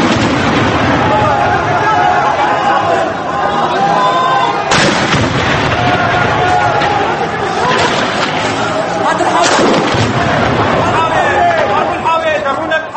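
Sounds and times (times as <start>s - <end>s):
heavy gunfire in Hama, Syria: 0.0s - 1.4s, 4.7s - 7.0s, 7.7s - 8.7s, 9.4s - 11.0s
army tank weapons fire booming in Hama, Syria: 0.0s - 2.6s, 4.7s - 12.0s
loud blasts: 0.0s - 12.2s
agitated crowd of protesters shouting: 0.0s - 12.9s
laughter: 2.4s - 4.6s, 6.7s - 10.0s.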